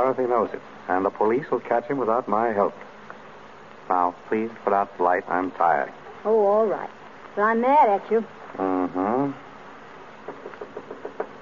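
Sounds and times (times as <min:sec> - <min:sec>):
speech: 0:00.0 - 0:02.9, 0:03.9 - 0:09.4
knocking on a door: 0:10.2 - 0:11.4.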